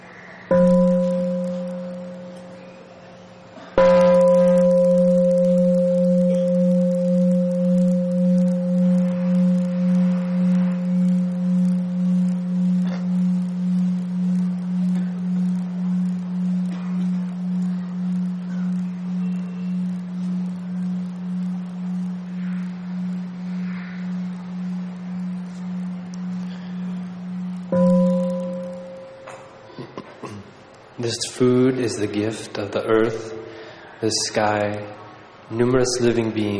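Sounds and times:
meditation bell ringing at a Buddhist mealtime: 0.5s - 3.0s, 3.7s - 29.8s
speech: 31.4s - 33.4s, 34.0s - 36.5s.

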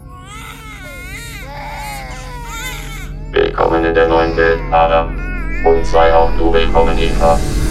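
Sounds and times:
babies wailing as they wake in sleep capsules: 0.0s - 3.4s
speech: 3.6s - 7.6s.

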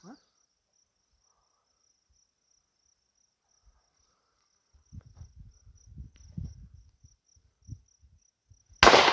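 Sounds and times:
crickets chirping: 0.0s - 9.1s
gunshot fired outdoors during a hunting outing: 8.8s - 9.1s.

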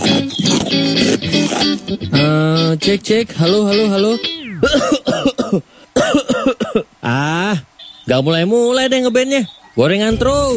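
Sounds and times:
harsh throaty coughing: 0.0s - 1.9s, 4.6s - 7.0s
speech: 1.8s - 6.5s, 7.1s - 10.5s.

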